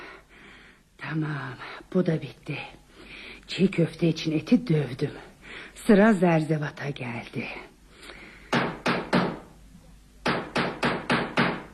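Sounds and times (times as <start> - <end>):
speech: 1.1 - 2.8, 3.5 - 7.7
knocking on a door: 8.5 - 9.4, 10.2 - 11.7.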